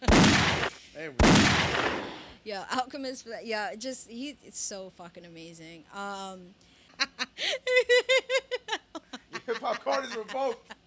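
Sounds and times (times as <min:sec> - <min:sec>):
gunshot sound effect: 0:00.0 - 0:02.4
speech: 0:01.0 - 0:08.2, 0:09.5 - 0:10.8
laughter: 0:06.9 - 0:10.8.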